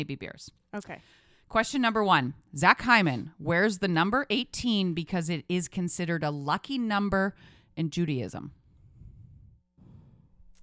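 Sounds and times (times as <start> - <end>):
speech: 0.0 - 8.6
heavy nervous breathing into microphone: 8.7 - 10.4.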